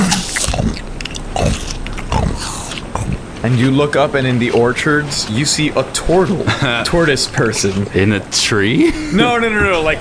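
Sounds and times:
person munching on an apple: 0.0 - 3.6
speech: 3.5 - 10.0.

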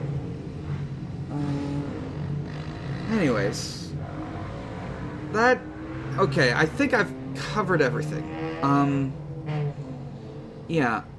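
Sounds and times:
motorcycles driving past: 0.0 - 10.7
speech: 3.2 - 3.8, 5.4 - 9.2, 10.7 - 11.1.

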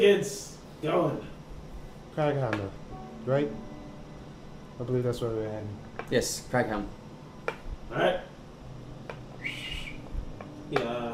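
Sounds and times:
speech: 0.0 - 1.3, 2.2 - 3.7, 4.8 - 7.0, 7.9 - 8.3, 10.7 - 11.1
low hum: 0.0 - 11.1
sharp whistle to call horses: 9.4 - 10.1.

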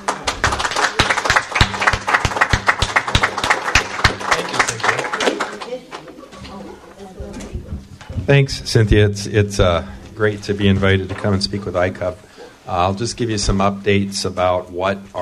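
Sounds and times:
audience clapping for a visiting speaker: 0.0 - 6.1
low murmur of voices: 0.0 - 13.4
speech: 8.3 - 15.1.

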